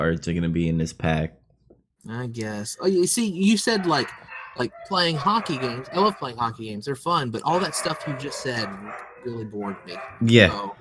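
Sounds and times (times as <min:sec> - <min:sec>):
speech: 0:00.0 - 0:01.4, 0:02.0 - 0:10.7
dog barking: 0:03.6 - 0:10.7.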